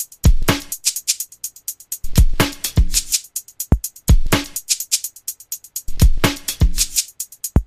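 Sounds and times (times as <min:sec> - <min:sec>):
ambient house mixed beat: 0:00.0 - 0:07.6.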